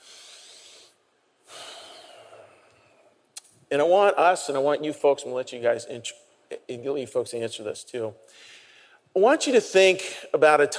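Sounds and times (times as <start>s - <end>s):
group taking a deep breath together during a guided pause: 0.0s - 3.2s, 8.2s - 9.1s
speech: 3.7s - 8.6s, 9.2s - 10.7s.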